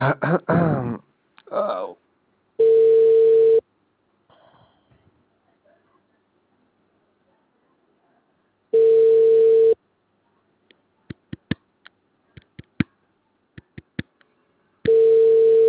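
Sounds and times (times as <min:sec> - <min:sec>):
speech: 0:00.0 - 0:00.6
telephone ringback tone: 0:02.6 - 0:03.6, 0:08.8 - 0:09.8, 0:14.9 - 0:15.6
faint clicks and taps: 0:10.6 - 0:15.0.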